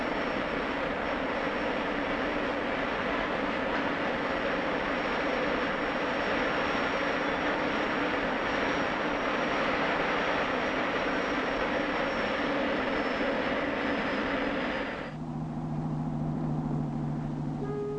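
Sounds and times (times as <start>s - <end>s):
jet aircraft engine roaring with a high whine: 0.0s - 17.9s
low steady hum: 15.2s - 17.9s.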